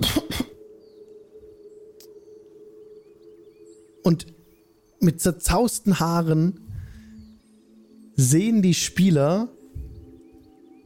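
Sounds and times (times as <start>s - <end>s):
person acting out raspy coughing fit: 0.0s - 0.6s
speech: 4.0s - 4.4s, 5.0s - 6.7s, 8.2s - 9.6s.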